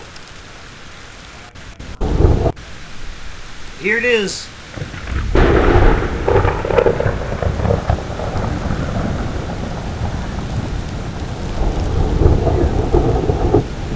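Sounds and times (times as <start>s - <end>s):
steady rainfall: 0.0s - 13.9s
thunderclap from a thunderstorm in Utah: 1.8s - 3.2s, 4.6s - 13.9s
speech: 3.8s - 5.0s.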